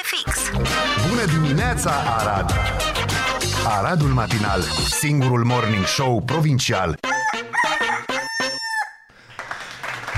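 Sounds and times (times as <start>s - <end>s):
speech: 0.1s - 2.9s, 3.6s - 7.0s
rooster crowing in a loud, strained call: 7.0s - 9.1s.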